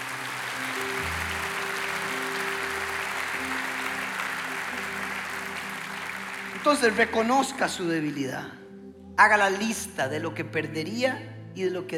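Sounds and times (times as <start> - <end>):
audience applauding: 0.0 - 7.8
speech: 6.6 - 8.6, 9.2 - 11.9.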